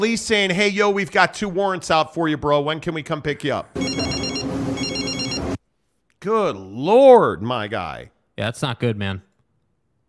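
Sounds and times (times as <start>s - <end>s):
speech: 0.0s - 4.4s, 6.2s - 9.3s
telephone ringing with trilling electronic bell: 3.8s - 5.6s.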